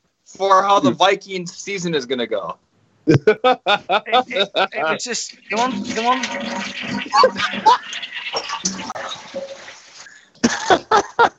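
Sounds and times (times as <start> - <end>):
speech: 0.3 - 9.4
laughter: 3.1 - 5.9, 7.0 - 7.9, 10.5 - 11.3
toilet flushing with gurgling rushing water: 4.3 - 10.3.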